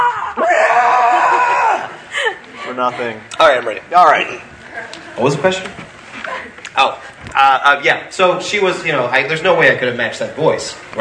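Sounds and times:
person screaming in character after stubbing a toe: 0.0 - 2.0
laughter: 0.9 - 3.3, 6.1 - 6.6
speech: 2.8 - 4.6, 5.2 - 5.8, 6.8 - 10.9.

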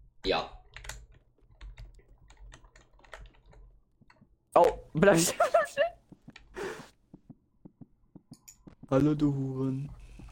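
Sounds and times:
speech: 0.2 - 0.6, 4.6 - 6.0, 8.9 - 10.0
computer keyboard being smashed, rapid hard clacking: 0.7 - 4.2.

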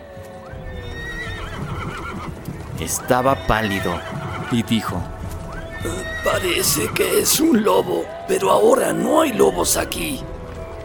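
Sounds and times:
soft shuffling horse hoof clops: 0.1 - 7.2
restless horses neighing: 0.5 - 8.2
speech: 2.8 - 5.2, 5.8 - 10.3.

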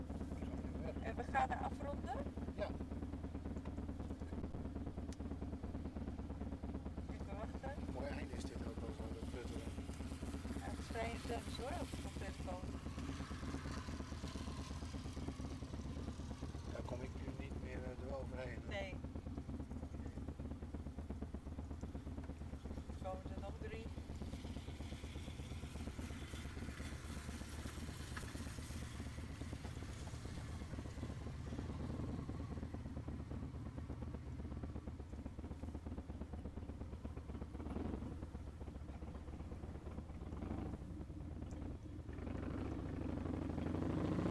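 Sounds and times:
motor engine idling: 0.0 - 44.2
speech: 1.0 - 3.0, 10.9 - 13.3.

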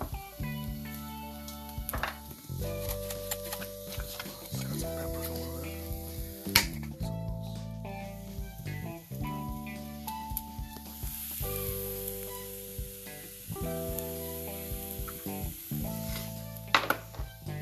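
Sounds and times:
frying sizzle of breakfast being made: 0.0 - 17.6
sustained musical chords: 0.0 - 17.6
utensils clicking and clattering: 2.0 - 5.5.

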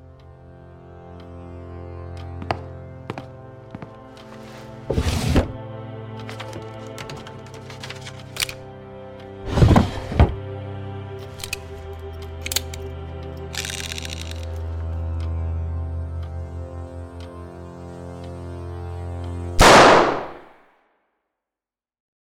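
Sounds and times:
low sustained musical drone: 0.0 - 20.0
gunshot: 19.6 - 20.6.

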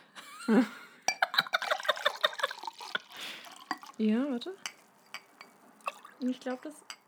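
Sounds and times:
laughter: 0.2 - 2.7
speech: 0.5 - 0.8, 4.0 - 4.7, 6.2 - 6.9
sharp glass clinks: 1.1 - 4.0, 4.6 - 7.0
liquid poured from one glass into another: 1.4 - 7.0.

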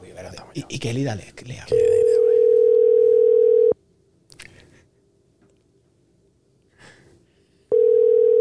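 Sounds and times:
speech: 0.2 - 1.9
telephone dial tone while placing a call: 2.1 - 3.8, 7.7 - 8.3.

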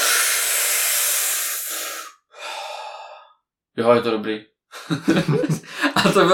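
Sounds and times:
voice imitating a strong hookah draw from a bowl of double apple tobacco: 0.0 - 3.4
speech: 3.8 - 6.3
laughter: 4.8 - 6.3.

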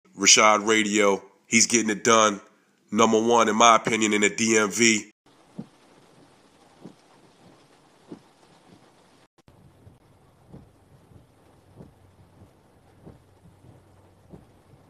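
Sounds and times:
speech: 0.2 - 5.7
heavy rain: 5.3 - 14.8
low thumps and rumbles: 5.3 - 14.8.

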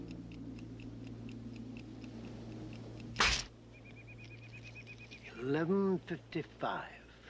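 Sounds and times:
clock ticking: 0.0 - 6.7
sharp burst of clock striking midnight: 3.2 - 3.5.

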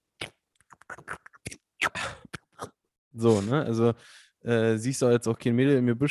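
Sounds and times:
mouth imitation of perch smacking at water surface: 0.2 - 3.5
speech: 3.2 - 6.0.

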